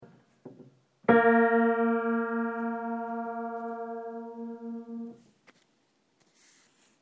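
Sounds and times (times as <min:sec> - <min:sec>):
Kawai piano note A3 pitch raise: 0:01.1 - 0:05.2.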